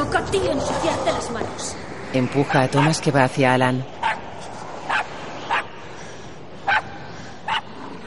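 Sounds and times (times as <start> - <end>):
speech: 0.2 - 4.0
small dog barking: 4.9 - 5.7, 6.7 - 6.9, 7.5 - 7.7.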